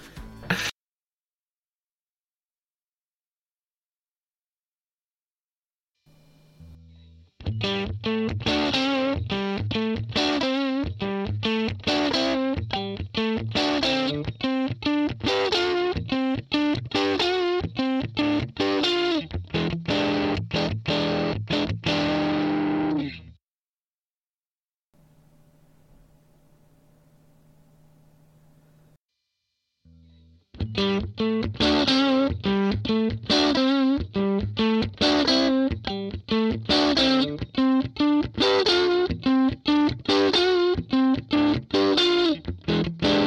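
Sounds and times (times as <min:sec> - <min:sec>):
electric guitar blues riff through a distorted 1959 Fender Bassman amp: 0:06.2 - 0:23.4, 0:30.0 - 0:43.2.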